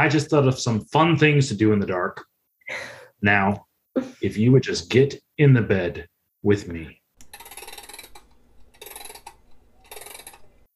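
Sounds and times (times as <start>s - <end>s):
speech: 0.0s - 7.0s
grandfather's wind-up clock mechanism clicking: 7.2s - 10.6s.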